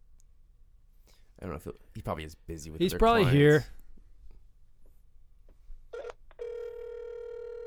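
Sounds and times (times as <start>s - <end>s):
speech: 1.4s - 3.8s
phone line ring tone on an outgoing call to a doctor: 5.9s - 7.6s.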